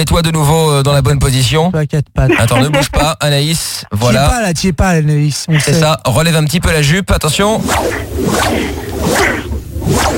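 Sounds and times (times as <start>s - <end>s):
speech: 0.0s - 10.1s
laughter: 2.2s - 3.2s, 5.5s - 6.0s
whip swishing through the air: 7.7s - 10.1s.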